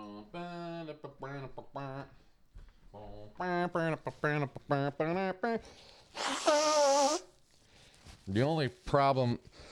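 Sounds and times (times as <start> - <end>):
speech: 1.0 - 2.1, 3.3 - 7.2, 8.3 - 9.7
loud honking nose blow: 6.2 - 7.3.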